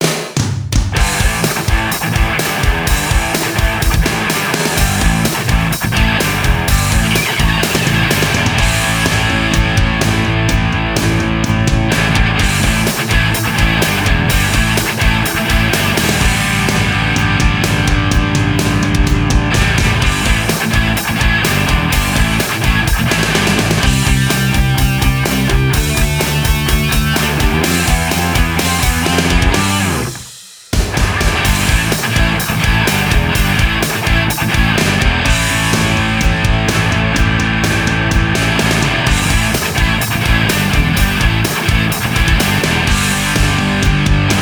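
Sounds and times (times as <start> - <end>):
rock music from a music box: 0.0 - 44.4.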